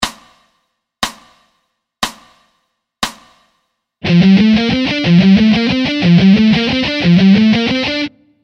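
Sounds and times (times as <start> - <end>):
alternate picking: 4.0 - 8.4.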